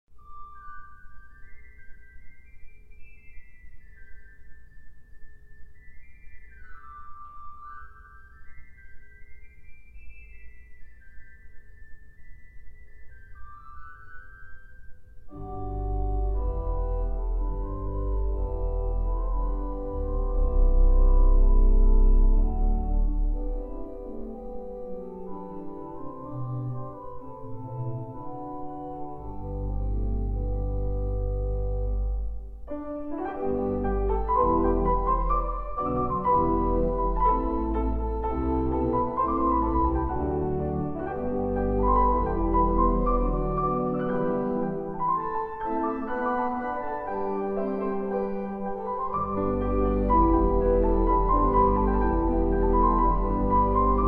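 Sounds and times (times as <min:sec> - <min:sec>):
improvised hymn duet on piano: 0:15.3 - 0:54.0.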